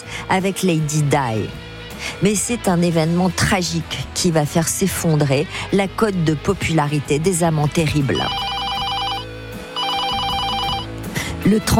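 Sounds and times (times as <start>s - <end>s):
speech: 0.3s - 8.5s, 11.5s - 11.7s
telephone in the countryside ringing with a trilling bell: 8.1s - 10.9s.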